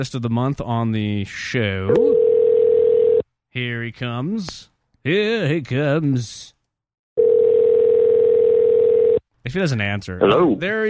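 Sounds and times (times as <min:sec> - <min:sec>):
speech: 0:00.0 - 0:02.3, 0:03.6 - 0:06.6, 0:09.4 - 0:10.8
Skype call dialing tone: 0:01.9 - 0:03.2, 0:07.2 - 0:09.2.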